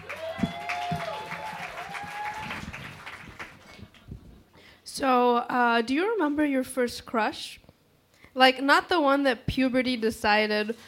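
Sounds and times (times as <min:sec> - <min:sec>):
audience clapping: 0:00.0 - 0:04.1
speech: 0:05.0 - 0:07.6, 0:08.4 - 0:10.8.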